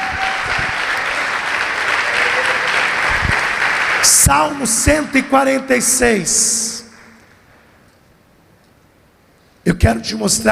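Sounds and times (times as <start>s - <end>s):
audience applauding: 0.0s - 7.4s
speech: 4.0s - 6.8s, 9.7s - 10.5s.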